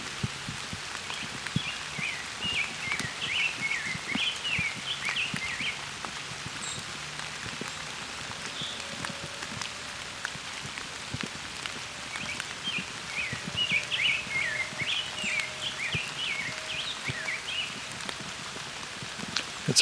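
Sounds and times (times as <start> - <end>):
steady patter of rain falling on surfaces: 0.0 - 19.8
rose-breasted grosbeak singing sweet warbling phrases: 1.1 - 5.8, 12.0 - 17.9.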